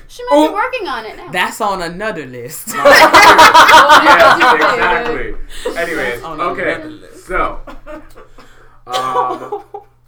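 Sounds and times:
speech: 0:00.1 - 0:08.0, 0:08.9 - 0:09.7
laughter: 0:02.7 - 0:06.0
person coughing: 0:08.2 - 0:09.8.

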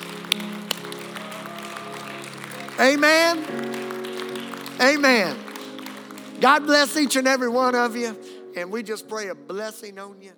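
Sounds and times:
hand claps: 0:00.0 - 0:07.2
speech: 0:02.8 - 0:03.8, 0:04.8 - 0:05.4, 0:06.4 - 0:10.3.

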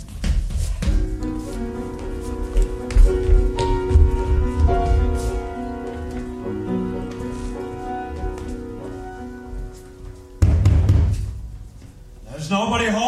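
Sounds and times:
music with steady tones: 0:00.0 - 0:12.4
knocking on the door of a residence in East Berlin: 0:10.4 - 0:11.3.

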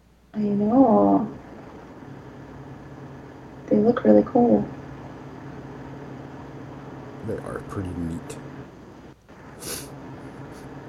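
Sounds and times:
speech: 0:00.4 - 0:01.3, 0:03.9 - 0:04.8, 0:07.3 - 0:08.4
nose sniffling from allergies: 0:09.6 - 0:10.7.

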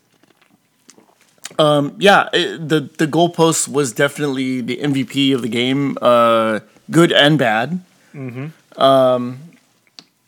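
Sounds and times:
person sipping mango beer: 0:00.1 - 0:01.6
speech: 0:01.5 - 0:09.5.

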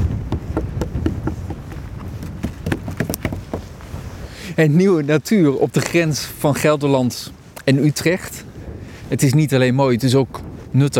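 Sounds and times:
faint outdoor background: 0:00.0 - 0:10.9
knocking on hard ancient bog oak wood: 0:00.2 - 0:03.7
speech: 0:04.6 - 0:08.4, 0:09.1 - 0:10.9.

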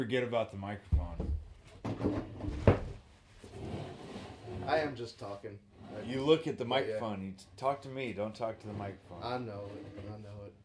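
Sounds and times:
speech: 0:00.0 - 0:01.3, 0:04.7 - 0:10.6
wooden chair shifting and scraping: 0:01.8 - 0:05.0, 0:08.5 - 0:10.4.

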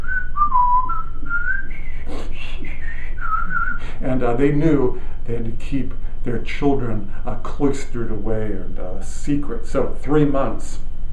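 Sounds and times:
person whistling a slow melody: 0:00.0 - 0:04.0
low hum: 0:00.0 - 0:11.1
speech: 0:04.0 - 0:10.9.

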